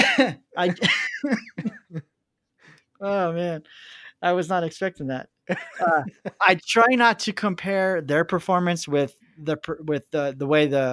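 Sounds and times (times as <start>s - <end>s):
person coughing: 0.0s - 1.9s, 5.8s - 6.1s
laughter: 0.0s - 2.0s, 5.5s - 6.5s
speech: 0.2s - 1.7s, 3.0s - 10.9s.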